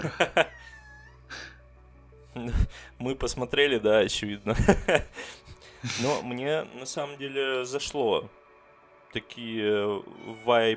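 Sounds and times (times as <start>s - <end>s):
speech: 0.0s - 0.5s, 2.4s - 8.4s, 9.1s - 10.7s
laughter: 0.0s - 1.0s, 4.5s - 6.2s
cat meowing softly: 0.5s - 1.2s, 10.0s - 10.7s.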